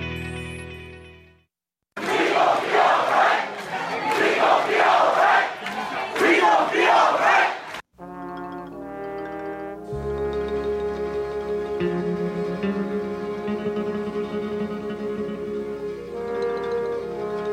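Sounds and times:
large stadium crowd roaring: 2.0 - 7.8
sustained horn-like musical tones: 8.0 - 17.5.

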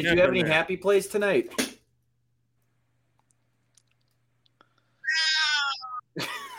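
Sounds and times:
speech: 0.0 - 1.7
cat meowing: 5.0 - 6.0.

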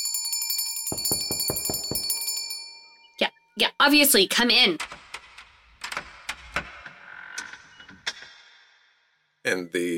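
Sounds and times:
bicycle-style bell rung rapidly and forcefully: 0.0 - 3.2
speech: 3.6 - 5.0, 9.5 - 9.9.

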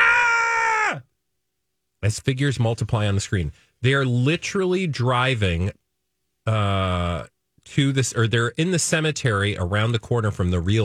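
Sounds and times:
three people screaming in fear in a car at a graveyard at night: 0.0 - 1.0
speech: 2.0 - 5.8, 6.4 - 10.8.

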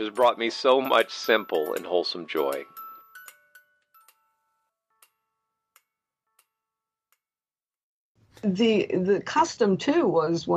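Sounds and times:
speech: 0.0 - 2.8, 8.4 - 10.5
tinkly electronic melody from a toy clock: 0.0 - 7.2
toy clock ticking: 0.0 - 7.3.

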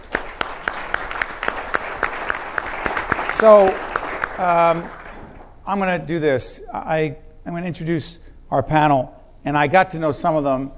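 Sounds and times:
audience applause for a foundation: 0.0 - 5.5
speech: 3.4 - 3.8, 4.4 - 5.0, 5.6 - 10.7.

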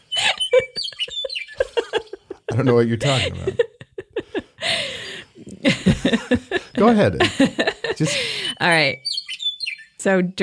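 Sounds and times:
bird singing in a tree in the Badlands: 0.0 - 2.3, 8.5 - 10.1
laughter: 0.1 - 9.0
speech: 2.6 - 3.6, 6.1 - 9.1, 10.0 - 10.4.

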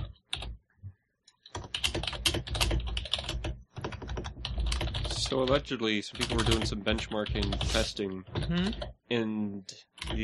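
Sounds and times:
rapid typing on a computer keyboard: 1.4 - 8.9, 10.0 - 10.2
speech: 5.3 - 10.2.

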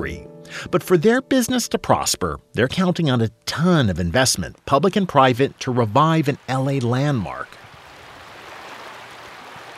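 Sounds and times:
speech: 0.0 - 7.6
Los Angeles River flowing past its bank in the Elysian Valley: 5.0 - 9.7.

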